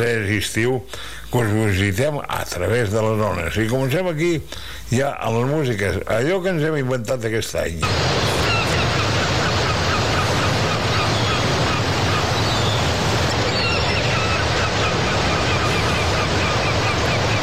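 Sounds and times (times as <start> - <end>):
speech: 0.0 - 8.4
sea waves surf: 7.8 - 17.4
seagulls calling: 7.8 - 17.4.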